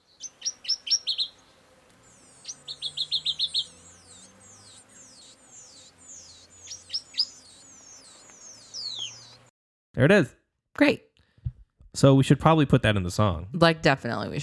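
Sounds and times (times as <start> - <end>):
brown woodland warbler singing: 0.0 - 9.5
speech: 10.0 - 11.1, 12.0 - 14.4.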